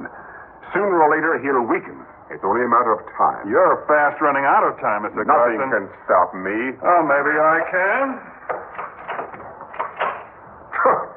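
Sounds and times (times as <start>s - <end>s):
speech: 0.7s - 8.4s
door pushed shut with clattering knocks and scrapes: 8.5s - 10.4s.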